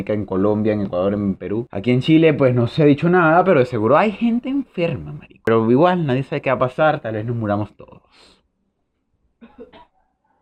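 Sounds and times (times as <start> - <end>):
speech: 0.0 - 8.4
person coughing: 9.4 - 10.0.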